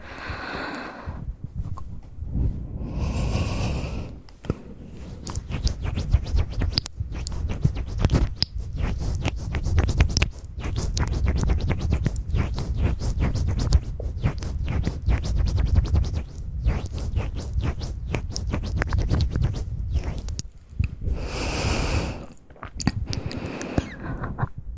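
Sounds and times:
airy breaths: 0:00.0 - 0:01.4, 0:02.3 - 0:05.3, 0:21.0 - 0:22.4, 0:23.0 - 0:24.3
soft wet mouth clicks and smacks: 0:05.2 - 0:05.8, 0:06.6 - 0:15.7, 0:16.3 - 0:21.0, 0:22.2 - 0:24.0.

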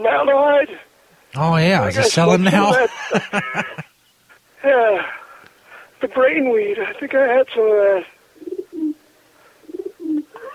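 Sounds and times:
speech: 0:00.0 - 0:03.9, 0:06.0 - 0:08.2
laughter: 0:01.4 - 0:03.9
bird hooting, possibly an owl: 0:08.4 - 0:09.0, 0:09.6 - 0:10.5.

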